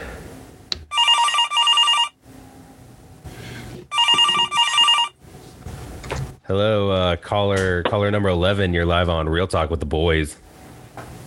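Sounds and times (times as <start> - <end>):
telephone ringing for an incoming call: 0.9 - 2.2, 3.9 - 5.2
speech: 6.5 - 10.4.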